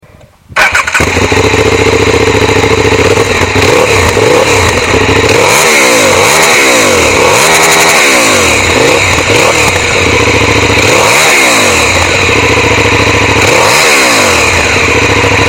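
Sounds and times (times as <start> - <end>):
KTM Superduke 990 motorcycle engine: 0.6 - 15.4.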